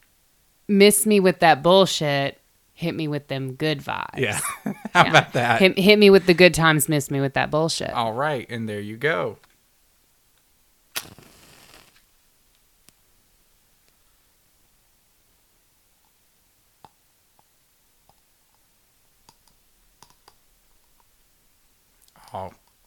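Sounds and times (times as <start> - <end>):
speech: 0.7 - 9.5
laughter: 4.2 - 6.7
candle wick crackling, hissing and spitting: 10.9 - 12.1.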